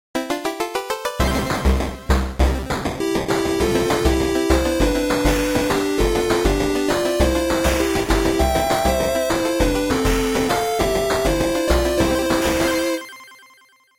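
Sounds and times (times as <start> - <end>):
8-bit chiptune song: 0.2 - 13.7.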